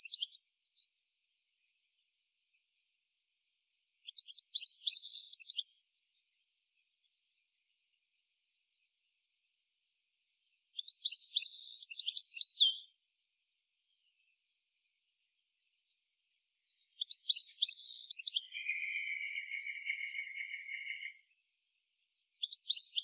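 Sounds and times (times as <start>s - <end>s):
European goldfinch Carduelis carduelis tinkling twittering calls: 0.0s - 1.0s, 4.0s - 5.7s, 10.7s - 13.3s, 16.7s - 21.3s, 22.4s - 23.0s.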